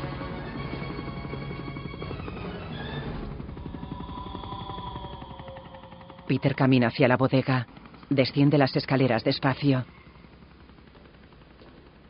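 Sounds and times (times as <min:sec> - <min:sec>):
sustained tones: 0:00.0 - 0:08.4
helicopter rotor chopping near a harbour at night: 0:00.0 - 0:12.0
speech: 0:06.3 - 0:10.0.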